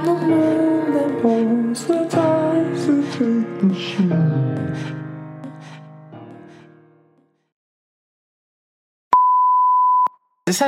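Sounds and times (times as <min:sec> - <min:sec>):
music: 0:00.0 - 0:07.5
speech: 0:00.1 - 0:00.6, 0:01.2 - 0:02.4, 0:03.2 - 0:05.0, 0:10.5 - 0:10.6
loud high electronic alarm tone: 0:09.2 - 0:10.1.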